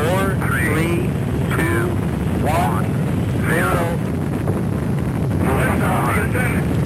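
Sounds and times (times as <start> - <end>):
radio-style chatter: 0.0 - 4.0, 5.4 - 6.6
space shuttle main engines roaring at launch: 0.0 - 6.8.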